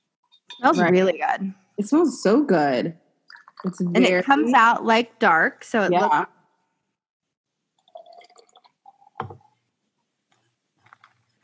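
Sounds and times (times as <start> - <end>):
speech: 0.6 - 3.0, 3.6 - 6.4
liquid poured into a glass over ice: 7.8 - 9.6.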